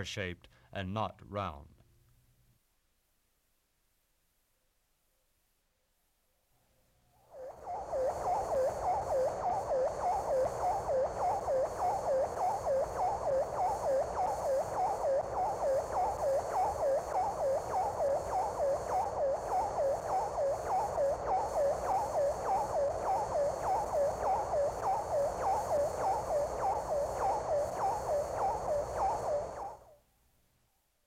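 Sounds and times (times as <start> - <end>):
speech: 0.0 - 1.8
thin hiss: 0.0 - 31.0
satellite radio telemetry signal warbling electronic tone: 7.2 - 30.0.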